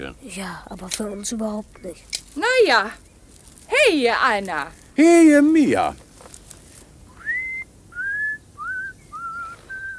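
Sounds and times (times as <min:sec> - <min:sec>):
speech: 0:00.0 - 0:03.1, 0:03.8 - 0:06.0
man whistling a simple tune while walking in a garden: 0:07.2 - 0:09.9.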